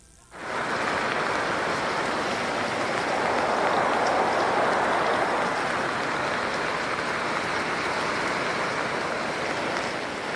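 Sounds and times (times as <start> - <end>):
heavy rain pouring in the Cajamarca district of Tolima: 0.3 - 10.3.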